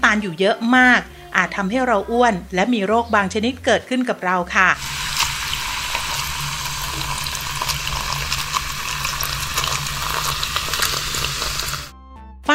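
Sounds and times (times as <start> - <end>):
speech: 0.0 - 4.9
carbonated soft drink poured into a glass, fizzing: 4.8 - 11.9.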